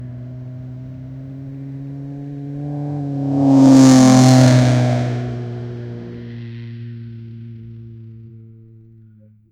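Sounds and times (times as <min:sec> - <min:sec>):
loud Lamborghini sports car flyby: 0:00.0 - 0:08.7.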